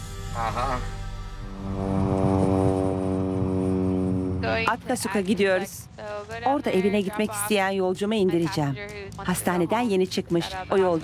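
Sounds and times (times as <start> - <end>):
small propeller airplane engine droning inside the cabin: 0.0 - 5.4
speech: 0.4 - 2.0, 4.6 - 11.0.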